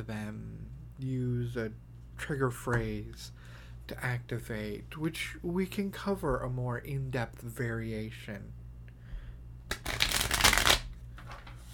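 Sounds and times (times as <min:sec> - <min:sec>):
speech: 0:00.0 - 0:08.6
snap shuffle of a deck of playing cards: 0:09.7 - 0:11.7.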